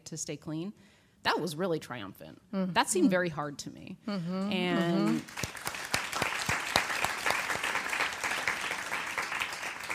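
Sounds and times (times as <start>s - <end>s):
speech: 0.1s - 5.6s
audience applause: 5.0s - 9.9s.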